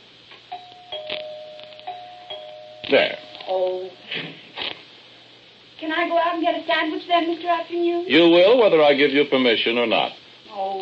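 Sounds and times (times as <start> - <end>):
doorbell ringing with a sustained steady tone: 0.5 - 4.0
speech: 2.9 - 4.3, 6.0 - 10.8.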